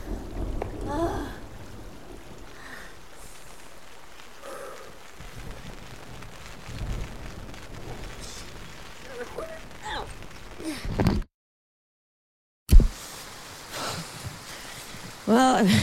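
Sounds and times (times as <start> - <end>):
rain pattering: 0.0 - 11.3, 12.7 - 15.8
sharp knock: 12.7 - 13.0
speech: 15.6 - 15.8.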